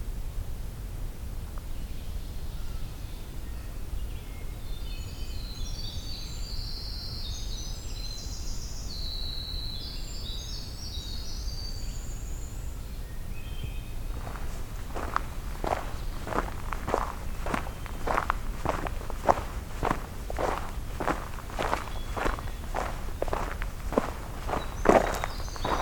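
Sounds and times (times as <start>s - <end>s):
low rumbling background noise: 0.0s - 25.7s
dense songbird chorus: 1.6s - 25.7s
Winter Wren song: 13.4s - 25.7s.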